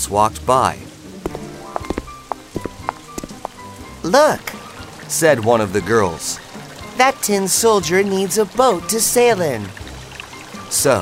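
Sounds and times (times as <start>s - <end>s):
speech: 0.0s - 0.8s, 4.1s - 6.4s, 7.0s - 9.8s, 10.7s - 11.0s
faint sparse rain falling on a street: 0.6s - 11.0s.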